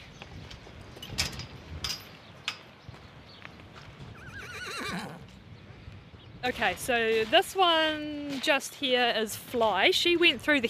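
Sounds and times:
breezy outdoor rumble: 0:00.0 - 0:10.6
horse whinnying: 0:04.1 - 0:05.3
speech: 0:06.4 - 0:10.6.

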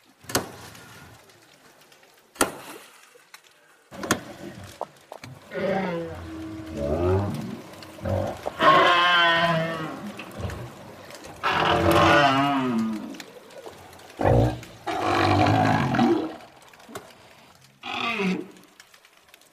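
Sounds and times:
southern right whale deep moaning tonal calls: 0:05.4 - 0:16.5.

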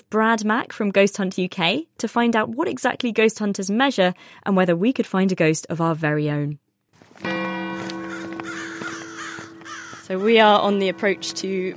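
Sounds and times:
speech: 0:00.1 - 0:06.6, 0:07.2 - 0:07.4, 0:10.1 - 0:11.7
crow cawing loudly and harshly in the open air: 0:07.7 - 0:11.7.

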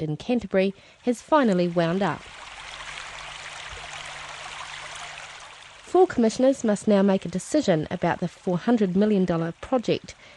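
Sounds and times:
speech: 0:00.0 - 0:02.4, 0:06.0 - 0:10.3
river water rushing and flowing: 0:01.0 - 0:06.0.

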